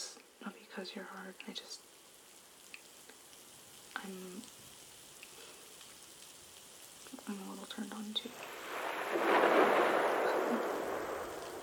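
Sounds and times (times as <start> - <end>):
speech: 0.8 - 1.9, 4.0 - 4.7, 7.2 - 9.9
thunder rumbling: 8.2 - 11.6.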